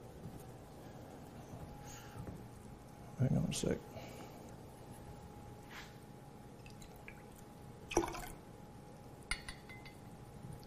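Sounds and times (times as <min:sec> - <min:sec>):
faint steady hum: 0:00.0 - 0:10.6
speech: 0:03.2 - 0:04.0
lemon juice dripping into water: 0:06.6 - 0:08.5.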